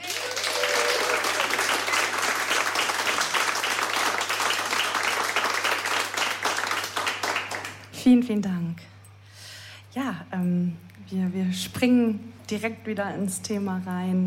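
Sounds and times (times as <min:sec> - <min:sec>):
live audience applauding a performer: 0:00.0 - 0:07.9
speech: 0:08.0 - 0:08.9, 0:10.0 - 0:14.2.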